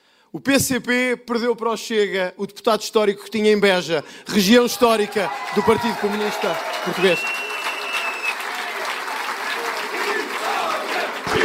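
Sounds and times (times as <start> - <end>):
speech: 0.3 - 7.4
Chega party supporters shouting and cheering election victory in Portugal: 4.6 - 11.4
Chega party supporters clapping after an election in Portugal: 4.9 - 11.4.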